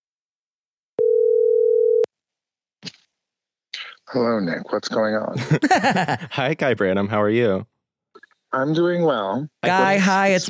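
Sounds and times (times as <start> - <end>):
steady electronic tone from a phone as a call is placed: 1.0 - 2.1
speech: 4.1 - 7.7, 8.5 - 10.4
laughter: 5.4 - 6.4.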